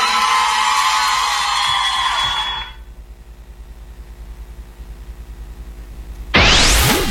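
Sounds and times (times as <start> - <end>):
crowd cheering and applause with whoops: 0.0 - 2.8.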